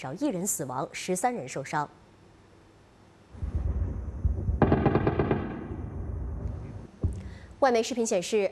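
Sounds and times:
speech: 0.0 - 2.0, 7.6 - 8.4
explosions at night: 3.4 - 7.5
anti-aircraft gunfire at night: 3.5 - 6.8.

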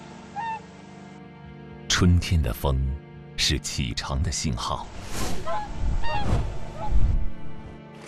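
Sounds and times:
swans honking: 0.0 - 1.2, 5.3 - 7.6
speech: 2.0 - 7.0
low steady rumble of wind or water: 4.8 - 7.8.

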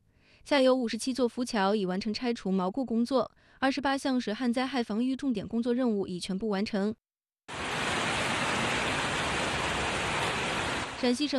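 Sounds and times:
speech: 0.5 - 7.0, 11.0 - 11.3
heavy rain mixed with hail pouring down: 7.5 - 11.0.

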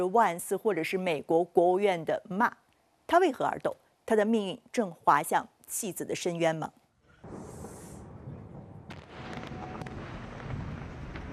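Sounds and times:
speech: 0.0 - 7.4
continuous explosions during airstrikes in southern Lebanon: 7.2 - 11.3
sharp cracking blasts of airstrikes: 7.2 - 11.3.

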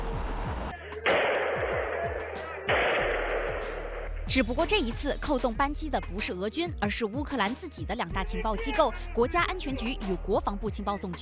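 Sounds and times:
bursts of gunfire outside apartment building: 1.0 - 4.2
speech: 4.4 - 11.1.

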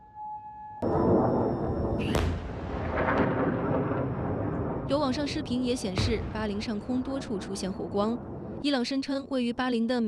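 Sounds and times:
air-defense missile interception explosion blast outdoors: 0.8 - 8.7
long rolling rumble of explosion: 0.8 - 9.0
second sharp crack of interception explosion: 2.0 - 7.0
speech: 5.1 - 10.0.

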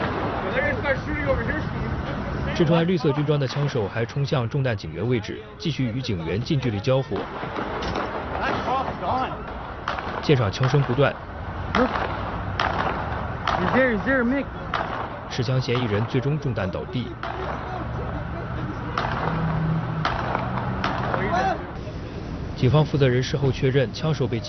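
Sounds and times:
people talking and shouting: 0.0 - 24.4
gunshots exchanged between police and gunman: 6.5 - 18.0, 18.8 - 21.6.

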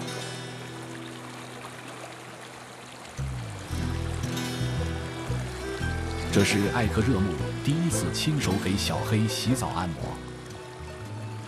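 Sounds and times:
stream water rushing with a steady broad hiss: 0.0 - 11.4
low sustained tones: 3.2 - 11.2
speech: 6.3 - 10.3.

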